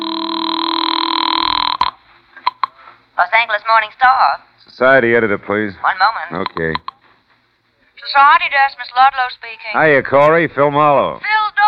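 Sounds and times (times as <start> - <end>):
steady telephone dial tone: 0.0 - 2.6
speech: 3.2 - 6.9, 8.0 - 11.6.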